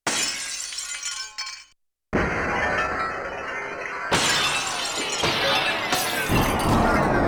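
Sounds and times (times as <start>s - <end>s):
broken glass falling down sampled on a Yamaha TX16W: 0.0s - 7.1s.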